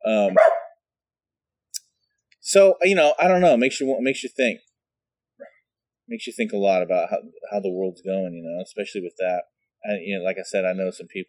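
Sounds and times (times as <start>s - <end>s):
speech: 0.1s - 0.6s, 2.5s - 4.7s, 6.1s - 11.2s
dog barking: 0.3s - 0.8s.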